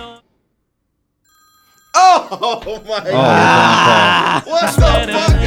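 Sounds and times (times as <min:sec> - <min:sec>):
warbling electronic phone ringtone: 0:01.3 - 0:03.2
laughter: 0:02.0 - 0:05.4
speech: 0:02.3 - 0:05.4.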